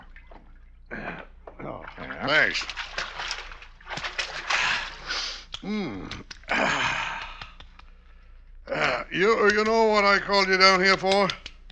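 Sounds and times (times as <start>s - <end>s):
rose water and glycerin lotion splashing out of a bottle: 0.0s - 8.0s
speech: 2.3s - 3.0s, 9.2s - 11.4s.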